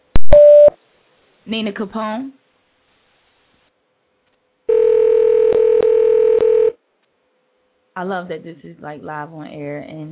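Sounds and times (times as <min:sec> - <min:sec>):
speech: 0:01.5 - 0:02.4, 0:08.0 - 0:10.1
telephone dial tone on an internet phone line: 0:04.7 - 0:06.8.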